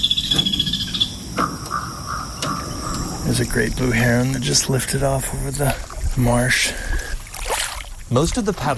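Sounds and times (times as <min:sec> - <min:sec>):
kingfisher chattering above the Ausable River in upstate New York: 0:00.0 - 0:04.0
low wash of outdoor noise: 0:00.0 - 0:08.7
speech: 0:03.3 - 0:06.8, 0:08.1 - 0:08.7.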